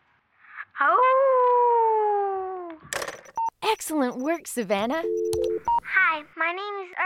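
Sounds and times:
child imitating a wolf howl: 0:00.8 - 0:02.8
speech: 0:03.8 - 0:07.0.

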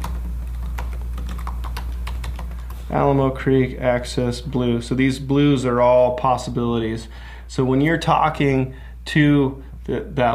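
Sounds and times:
typing on a computer keyboard into a mapping program: 0:00.0 - 0:02.8
speech: 0:02.9 - 0:10.3.

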